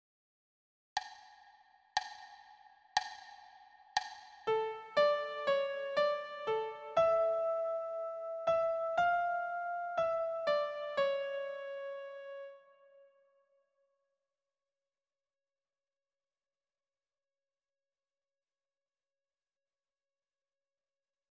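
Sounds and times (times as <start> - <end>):
piano in D minor: 4.0 - 13.4.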